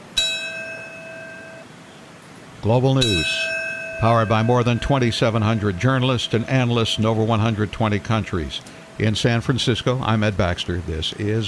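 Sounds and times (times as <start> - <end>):
single memorial chime in Washington, D.C. ringing with metallic tone: 0.0 - 1.8, 2.7 - 9.5
speech: 2.6 - 11.4.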